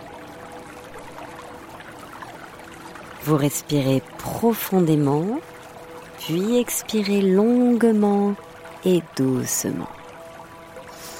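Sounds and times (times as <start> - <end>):
small stream babbling with soft splashes: 0.0 - 11.1
speech: 3.2 - 5.6, 6.2 - 10.0.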